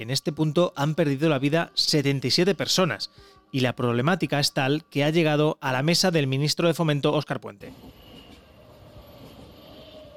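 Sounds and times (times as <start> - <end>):
speech: 0.0 - 8.0
train rumbling along railway tracks in Sedaví Valencia Spain: 7.7 - 10.1
faint high-pitched train wheel whine: 7.8 - 10.1.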